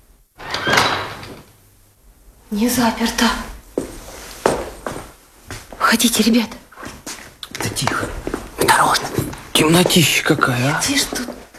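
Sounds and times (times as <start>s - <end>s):
door being pushed open with a scraping sweep: 0.4s - 1.5s
speech: 2.5s - 3.5s, 5.9s - 6.6s, 7.7s - 11.4s.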